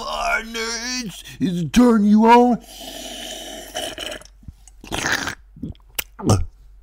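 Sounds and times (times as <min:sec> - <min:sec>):
speech: 0:00.4 - 0:03.1, 0:05.6 - 0:06.5
wet drinking and slurping close to microphone: 0:02.6 - 0:05.8.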